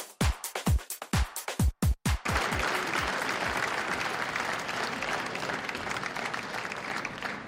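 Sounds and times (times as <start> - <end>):
large audience clapping in unison to a steady beat: 0.2 - 7.4
loud sustained audience applause: 2.1 - 7.4.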